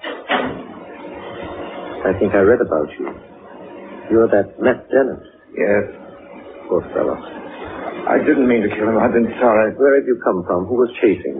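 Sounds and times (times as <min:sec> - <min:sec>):
door swinging shut with a solid thud: 0:00.0 - 0:00.8
speech: 0:02.0 - 0:03.4, 0:04.1 - 0:06.0, 0:06.7 - 0:07.4, 0:08.1 - 0:11.3.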